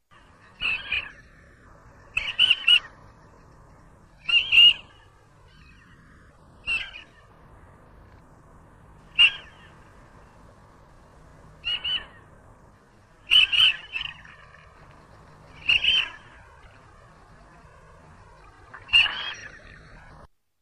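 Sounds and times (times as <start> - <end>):
marbled teal calling: 2.0 - 3.1, 4.1 - 7.4, 9.0 - 10.4, 11.6 - 12.3, 13.2 - 20.2.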